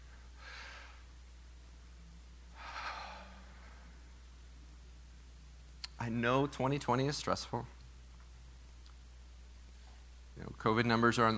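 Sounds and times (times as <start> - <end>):
steady low hum: 0.0 - 11.3
group taking a deep breath together: 0.2 - 1.1, 2.6 - 4.0
speech: 6.0 - 7.8, 10.6 - 11.3.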